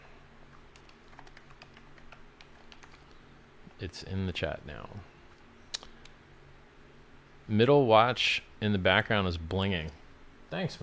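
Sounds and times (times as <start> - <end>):
typing on a computer keyboard: 0.7 - 3.2
speech: 3.8 - 5.2, 7.5 - 10.8.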